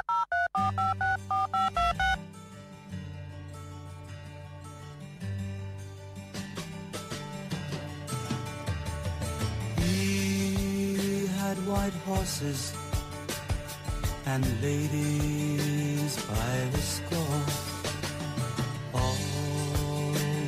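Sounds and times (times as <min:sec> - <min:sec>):
short electronic beeps like an answering machine tone: 0:00.0 - 0:02.2
full band music with steady bass: 0:06.5 - 0:20.4
speech: 0:11.8 - 0:12.8, 0:14.3 - 0:17.6.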